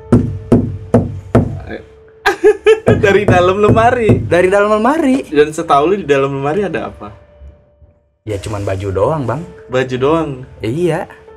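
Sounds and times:
firm knocking on wood: 0.0 - 1.6, 2.8 - 5.2
laughter: 2.3 - 3.3
speech: 2.9 - 7.2, 8.2 - 11.2.

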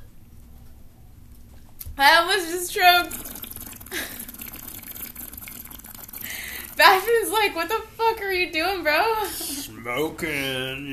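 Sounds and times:
speech: 2.0 - 3.3, 6.8 - 10.9
liquid and ice sloshing in a cup: 3.0 - 7.4.

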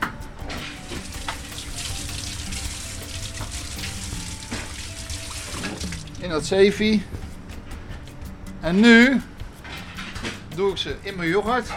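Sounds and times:
banana peel being rinsed under a running cold tap: 0.8 - 6.2
speech: 6.2 - 7.2, 8.6 - 9.3, 10.6 - 11.7.

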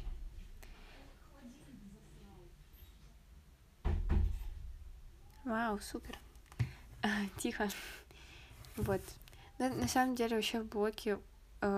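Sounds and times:
quiet room noise: 0.0 - 10.8
door pushed shut with a heavy double thud: 3.8 - 4.6
speech: 5.5 - 6.3, 7.0 - 8.0, 8.8 - 11.7.

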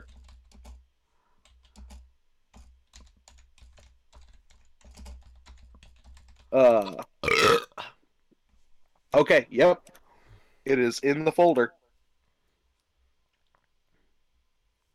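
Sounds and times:
typing on a computer keyboard: 0.0 - 0.8, 1.4 - 6.6
speech: 6.5 - 7.0, 9.2 - 9.9, 10.6 - 11.8
loud voiced burp-like sounds: 6.7 - 8.0.

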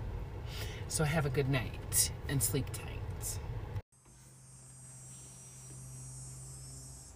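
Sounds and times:
low constant hum: 0.0 - 7.1
speech: 0.9 - 3.4
cicada buzzing in a steady high-pitched drone: 4.0 - 7.1.

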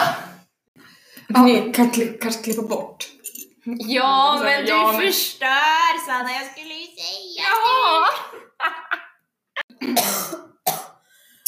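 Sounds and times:
speech: 1.3 - 8.8
laughter: 7.8 - 9.2
person coughing harshly: 9.7 - 11.0.

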